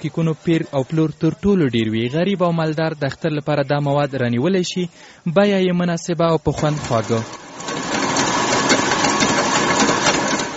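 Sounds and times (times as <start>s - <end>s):
speech: 0.0s - 7.9s
bakery kitchen machines whirring and clattering while making cookies and cakes: 6.4s - 10.5s.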